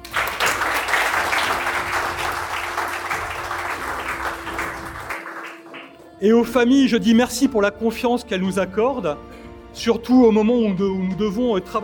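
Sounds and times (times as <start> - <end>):
audience applause: 0.0 - 6.1
speech: 6.2 - 11.8.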